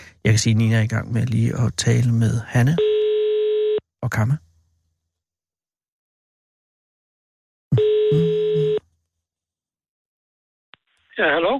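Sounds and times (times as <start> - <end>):
speech: 0.2 - 2.9, 4.0 - 4.4, 11.2 - 11.5
telephone ringing tone over a phone line: 2.8 - 3.8, 7.7 - 8.8.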